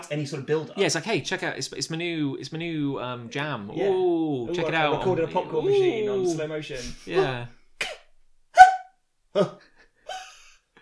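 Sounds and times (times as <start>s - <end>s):
speech: 0.0s - 7.6s, 9.3s - 9.6s
old man coughing raspily: 7.8s - 8.1s.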